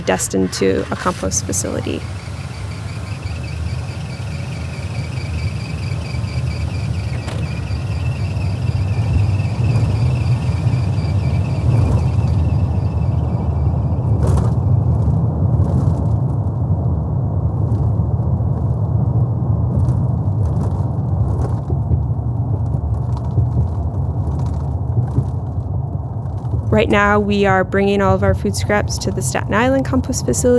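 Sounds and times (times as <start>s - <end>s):
speech: 0.0s - 2.3s, 26.8s - 30.5s
truck wheels thumping over expressway pavement joints: 0.0s - 14.7s
low road rumble from inside a moving truck: 0.0s - 30.5s.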